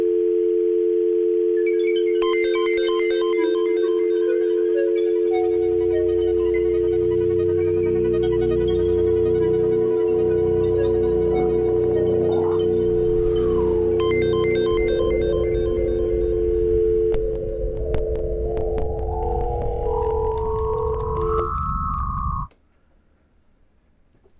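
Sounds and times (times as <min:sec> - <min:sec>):
loud steady telephone dial tone: 0:00.0 - 0:18.0
electronic beeps and chirps: 0:02.2 - 0:22.5
deep throbbing low pulse: 0:07.1 - 0:22.5.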